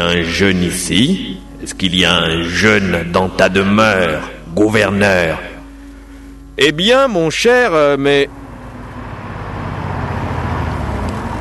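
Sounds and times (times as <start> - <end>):
speech: 0.0 - 5.5, 6.6 - 8.4
car engine rumbling as the car drives up: 0.0 - 11.3.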